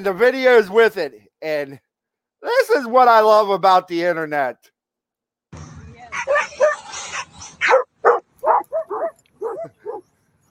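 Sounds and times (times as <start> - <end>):
speech: 0.0 - 4.7
dogs barking excitedly while chasing a remote control car: 6.1 - 10.1.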